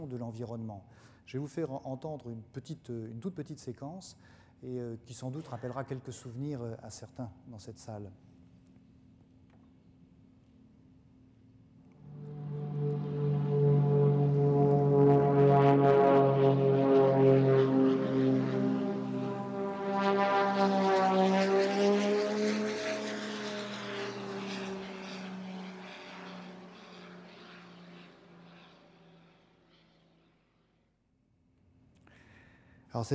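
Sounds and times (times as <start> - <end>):
speech: 0.0 - 8.3
propeller fighter plane engines droning above a garden: 8.2 - 30.7.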